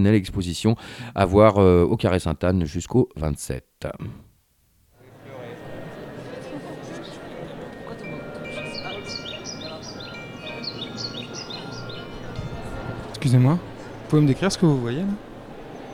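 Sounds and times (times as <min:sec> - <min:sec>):
speech: 0:00.0 - 0:04.3, 0:13.2 - 0:15.3
murmur of many people talking in a crowded room: 0:05.0 - 0:15.9
bird chirps and twittering in an art installation: 0:07.0 - 0:14.6.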